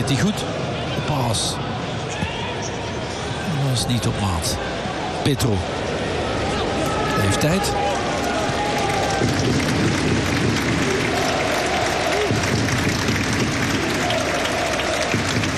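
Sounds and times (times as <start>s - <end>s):
speech: 0.0s - 1.9s, 3.6s - 5.8s, 7.2s - 7.9s
faint murmurs from stadium stands: 0.0s - 15.5s
large stadium crowd applauding: 3.3s - 15.5s.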